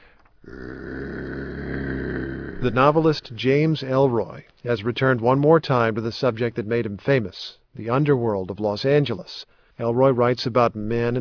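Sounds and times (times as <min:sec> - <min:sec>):
man imitating a dog growl: 0:00.4 - 0:03.2
speech: 0:02.6 - 0:11.1.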